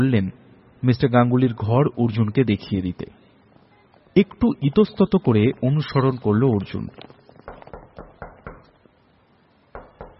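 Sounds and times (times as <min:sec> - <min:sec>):
speech: 0:00.0 - 0:03.2, 0:04.2 - 0:07.2
knocking on a door: 0:07.5 - 0:08.7, 0:09.7 - 0:10.1.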